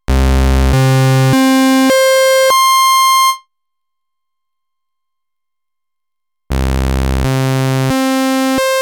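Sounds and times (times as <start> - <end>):
Novation Bass Station Rack bass synthesizer waveform: 0.1 - 2.5, 6.5 - 8.7.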